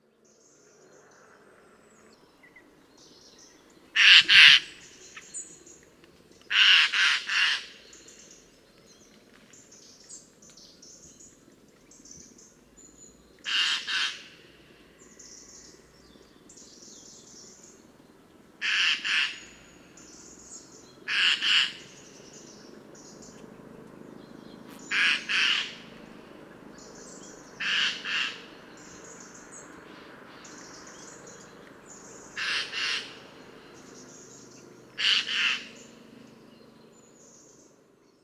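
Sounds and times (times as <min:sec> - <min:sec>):
Eurasian jay calling: 0:04.0 - 0:05.4, 0:06.5 - 0:07.8, 0:13.5 - 0:14.3, 0:18.6 - 0:19.5, 0:21.1 - 0:22.0, 0:24.7 - 0:26.0, 0:27.5 - 0:29.2, 0:31.9 - 0:33.4, 0:34.9 - 0:36.0.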